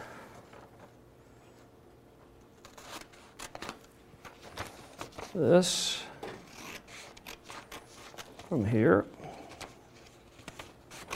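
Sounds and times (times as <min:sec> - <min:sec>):
scissors snipping through a sheet of paper: 0:02.6 - 0:03.8, 0:06.5 - 0:08.5, 0:10.4 - 0:11.1
speech: 0:05.4 - 0:06.0, 0:08.5 - 0:09.2.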